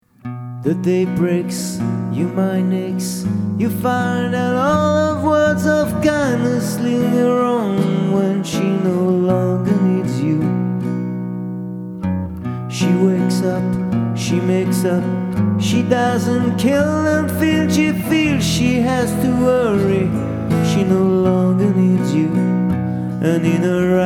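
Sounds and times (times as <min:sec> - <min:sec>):
solo guitar: 0:00.0 - 0:24.0
person singing: 0:00.6 - 0:11.0, 0:12.4 - 0:24.0.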